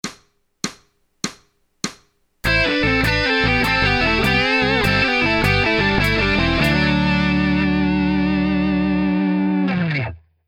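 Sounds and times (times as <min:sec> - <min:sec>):
easy guitar harmonies: 0:02.4 - 0:10.3.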